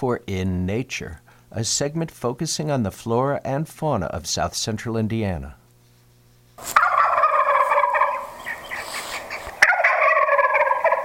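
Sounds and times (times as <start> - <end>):
speech: 0.0 - 5.6
wild turkey gobbling: 6.6 - 11.0.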